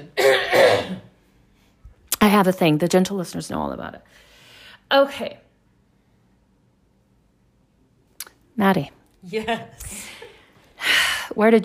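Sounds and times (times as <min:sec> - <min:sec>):
person clearing throat: 0:00.0 - 0:01.1
speech: 0:02.3 - 0:04.3, 0:04.9 - 0:05.4, 0:08.6 - 0:10.2, 0:11.4 - 0:11.6.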